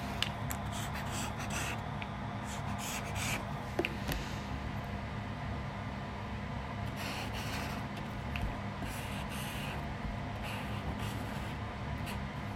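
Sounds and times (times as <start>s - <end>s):
low steady hum: 0.0s - 12.5s
pen or pencil scratching in short strokes while drawing: 0.7s - 1.8s, 2.4s - 3.4s, 8.8s - 9.8s, 10.4s - 12.2s.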